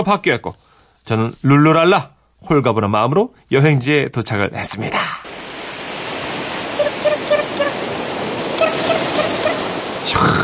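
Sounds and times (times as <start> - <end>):
speech: 0.0 - 5.4
cool ocean wind blowing: 4.7 - 10.4
sea waves at a seaside travel destination: 4.8 - 10.4.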